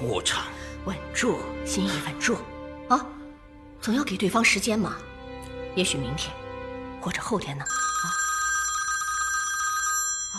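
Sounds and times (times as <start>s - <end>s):
speech: 0.0s - 3.2s, 3.8s - 5.1s, 5.8s - 6.4s, 7.0s - 8.2s
delegation's telephone bell trilling: 7.7s - 10.3s.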